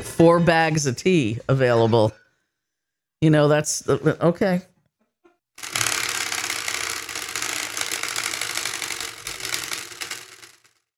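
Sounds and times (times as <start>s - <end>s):
speech: 0.2s - 2.2s, 3.2s - 4.7s
topic spinning wheel clicking to a stop: 5.6s - 10.9s.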